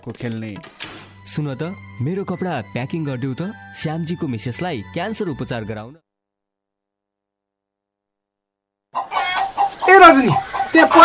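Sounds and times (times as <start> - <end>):
speech: 0.0 - 6.0, 9.9 - 11.0
chickens clucking and squawking on a farm at feeding time: 9.0 - 11.0.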